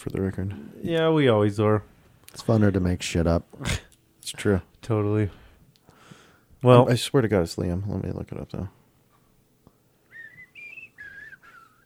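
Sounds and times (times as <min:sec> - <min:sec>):
speech: 0:00.0 - 0:05.4, 0:06.6 - 0:08.8
person whistling a short clear tune: 0:10.1 - 0:11.8.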